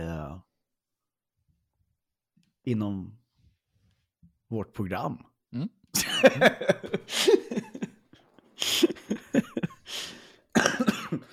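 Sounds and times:
speech: 0:02.6 - 0:03.2, 0:04.5 - 0:07.7
person coughing: 0:06.0 - 0:07.9, 0:08.6 - 0:11.3
laughter: 0:06.0 - 0:08.0, 0:08.6 - 0:10.1.

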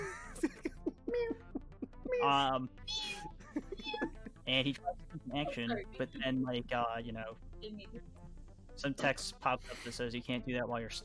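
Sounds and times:
laughter: 0:00.0 - 0:02.4, 0:03.0 - 0:06.8
person's voice imitating a cat meowing: 0:02.1 - 0:06.6
speech: 0:02.2 - 0:03.1, 0:04.5 - 0:08.2, 0:08.8 - 0:11.0.

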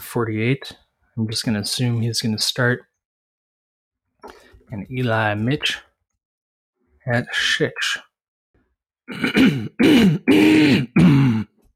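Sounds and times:
speech: 0:00.1 - 0:02.9, 0:04.2 - 0:05.9, 0:07.1 - 0:08.1, 0:09.1 - 0:11.2
man loudly clearing his throat in rough gravelly bursts: 0:09.1 - 0:11.6.

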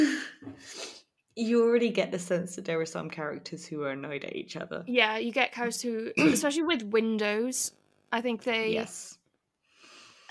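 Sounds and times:
soft exhale: 0:00.0 - 0:01.0
speech: 0:01.4 - 0:09.2
person sneezing: 0:06.2 - 0:06.4.

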